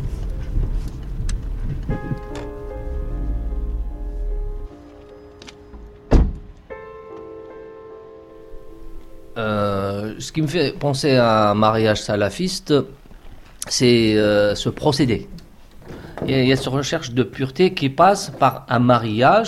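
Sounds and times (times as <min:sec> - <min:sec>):
car engine rumbling at low speed: 0:00.0 - 0:06.6
car door thump: 0:05.7 - 0:06.6
speech: 0:10.2 - 0:13.0, 0:13.7 - 0:15.4, 0:16.3 - 0:19.4.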